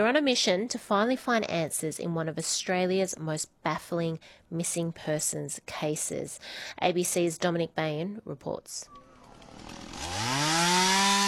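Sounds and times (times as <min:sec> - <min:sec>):
speech: 0:00.0 - 0:09.0
chainsaw cutting in bushland during a search: 0:08.9 - 0:11.2.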